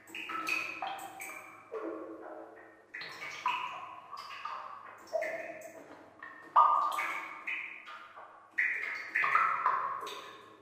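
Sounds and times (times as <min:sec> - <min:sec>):
water dripping: 0:00.0 - 0:10.6.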